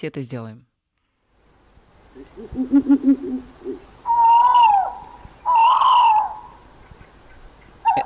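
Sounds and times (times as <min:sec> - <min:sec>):
speech: 0:00.0 - 0:00.7, 0:02.2 - 0:04.2
Eurasian eagle-owl hooting and wailing: 0:02.1 - 0:08.0.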